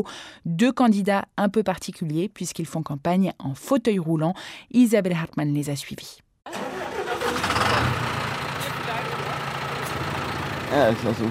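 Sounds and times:
speech: 0:00.0 - 0:06.6, 0:10.7 - 0:11.2
green tractor engine starting and idling: 0:06.5 - 0:11.2.

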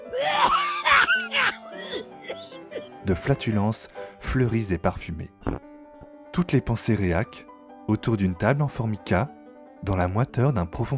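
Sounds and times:
harsh coughing fit: 0:00.2 - 0:02.9
speech: 0:03.0 - 0:05.7, 0:06.4 - 0:10.9.

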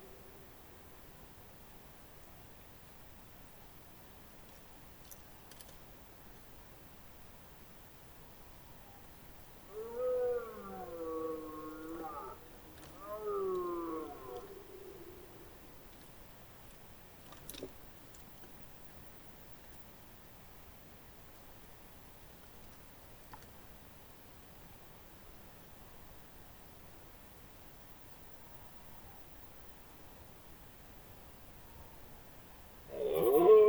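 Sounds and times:
faint ticks: 0:04.4 - 0:06.0, 0:09.7 - 0:20.0, 0:22.2 - 0:24.5, 0:32.9 - 0:33.6
wavering squealing calls of dormice: 0:10.0 - 0:15.6, 0:32.9 - 0:33.6.

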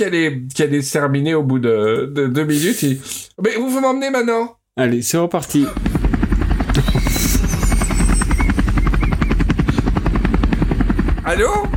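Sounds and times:
speech: 0:00.0 - 0:06.0
helicopter rotor chopping with turbine whine: 0:05.5 - 0:11.7.

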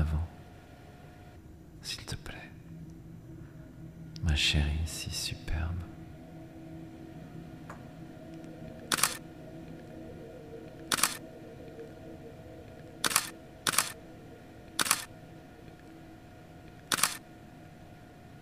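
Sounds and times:
low hum: 0:00.0 - 0:18.3
speech: 0:04.4 - 0:05.9
camera shutter clicks during a photo shoot: 0:08.9 - 0:09.2, 0:10.9 - 0:11.2, 0:13.0 - 0:14.0, 0:14.8 - 0:15.1, 0:16.8 - 0:17.2.

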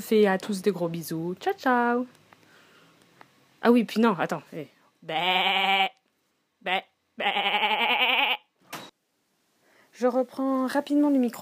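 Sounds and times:
speech: 0:00.0 - 0:02.2, 0:03.6 - 0:06.0, 0:06.6 - 0:08.0, 0:10.0 - 0:11.4
sheep bleating: 0:05.1 - 0:06.0, 0:06.6 - 0:08.5.

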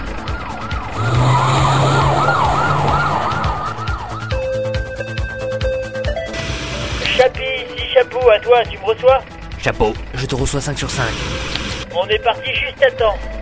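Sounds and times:
police siren wailing: 0:00.0 - 0:05.1
rumbling engine: 0:00.0 - 0:13.3
speech: 0:08.3 - 0:13.3.

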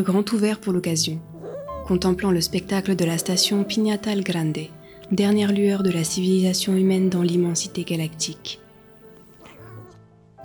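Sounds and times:
speech: 0:00.0 - 0:01.3, 0:01.9 - 0:08.6
cat purring softly: 0:00.8 - 0:05.8, 0:08.1 - 0:10.0.

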